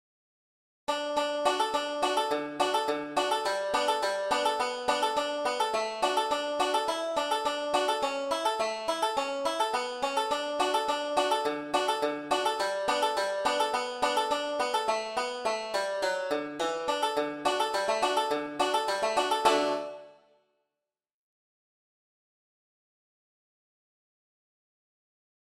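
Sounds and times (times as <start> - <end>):
old five-string banjo solo: 0.9 - 20.2.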